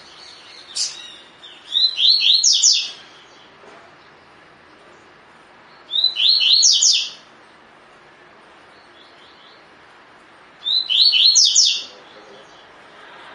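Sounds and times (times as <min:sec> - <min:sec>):
double-collared seedeater song of high downslurred whistles: 0:00.3 - 0:03.0, 0:05.9 - 0:07.2, 0:10.6 - 0:11.9.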